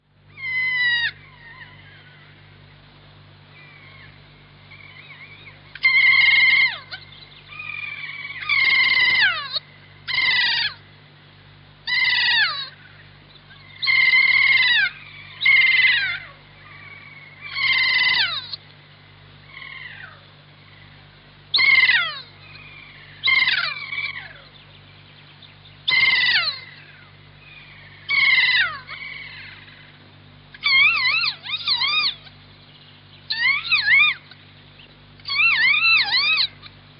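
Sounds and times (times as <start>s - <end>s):
low steady hum: 0.0s - 36.9s
kea New Zealand mountain parrot giving descending wailing calls: 0.3s - 2.3s, 3.6s - 10.8s, 11.9s - 18.6s, 19.5s - 20.2s, 21.5s - 24.6s, 25.9s - 32.4s, 33.3s - 34.4s, 35.2s - 36.8s.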